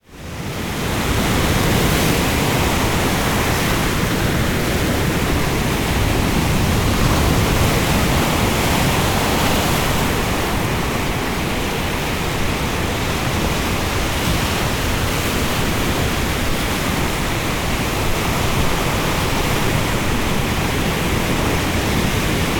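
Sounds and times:
heavy waves surf in an ocean storm: 0.1 - 22.5.

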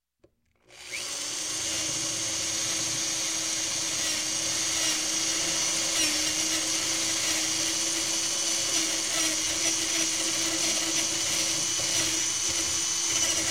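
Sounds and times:
hand drill drilling a hole in construction: 0.6 - 13.4.

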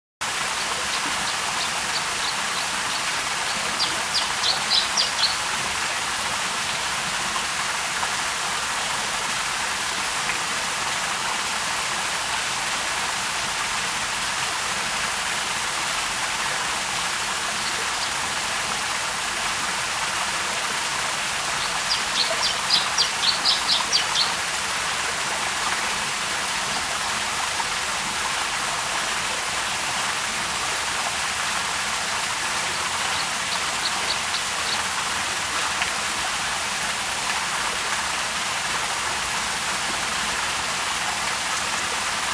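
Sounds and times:
medium water stream: 0.2 - 42.3.

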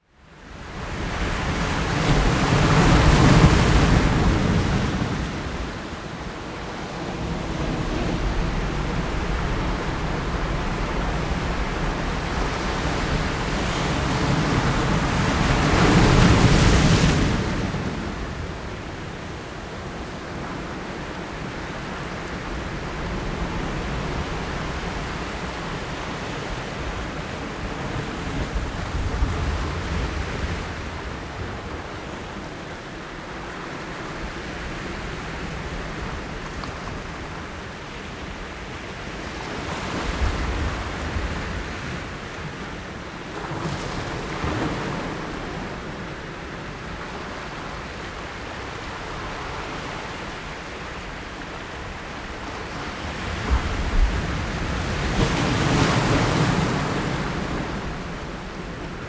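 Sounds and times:
sea waves in a bay: 1.0 - 59.0.

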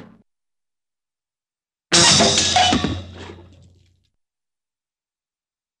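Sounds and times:
cartoon metallic impact: 1.9 - 3.5.

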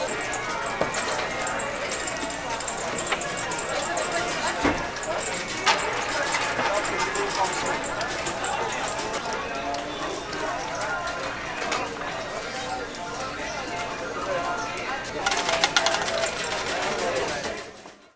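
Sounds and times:
game hall ambience: 0.0 - 17.8.

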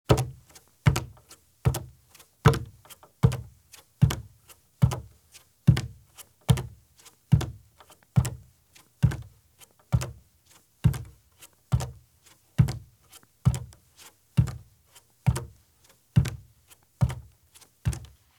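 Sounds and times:
bare feet walking at slow pace on wood porch or footbridge: 0.1 - 10.2, 12.6 - 14.7, 15.3 - 18.2.

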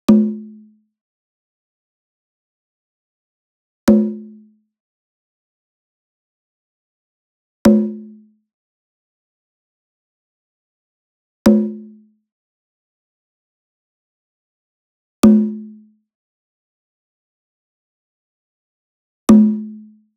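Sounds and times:
small drum tambora hit hard with beater: 0.1 - 0.5, 3.9 - 4.3, 7.7 - 8.1, 11.5 - 11.8, 15.2 - 15.6, 19.3 - 19.7.

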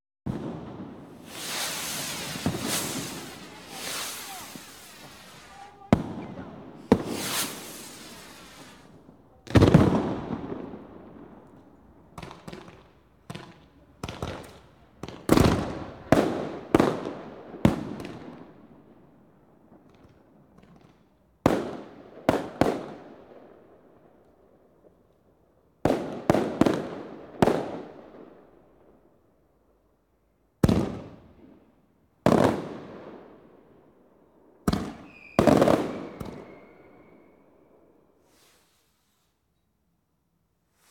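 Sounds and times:
firework display outdoors: 0.3 - 18.8, 19.8 - 23.6, 25.8 - 28.2, 32.3 - 33.2, 34.7 - 37.4
people at an outdoor firework display: 1.3 - 9.9.

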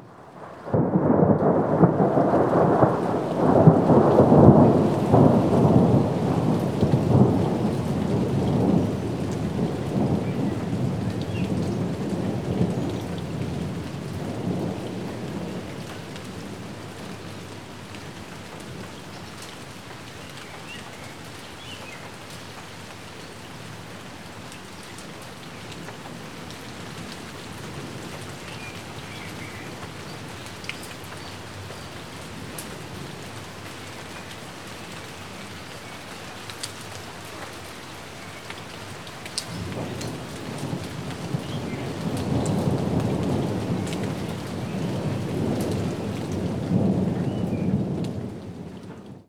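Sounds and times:
rain in woods: 0.0 - 49.2
thunder in woods: 0.4 - 15.7, 39.5 - 49.2.

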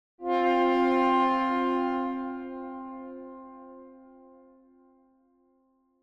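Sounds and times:
higher tuba tone duet: 0.2 - 4.2.

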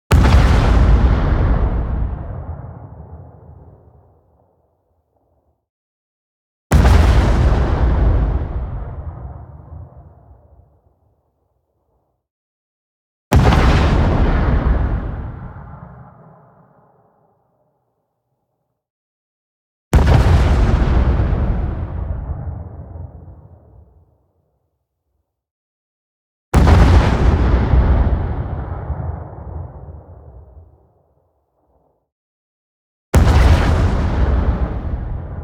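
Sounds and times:
long explosion with sustained low end: 0.1 - 4.5, 6.7 - 11.0, 13.3 - 17.0, 20.0 - 24.1, 26.6 - 31.0, 33.2 - 35.4.

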